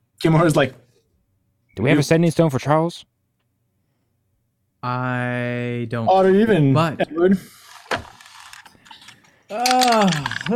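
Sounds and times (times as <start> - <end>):
speech: 0.2 - 0.8, 1.8 - 3.1, 4.8 - 7.6, 9.5 - 10.5
die clicking and rattling into a dice tray: 7.7 - 10.5.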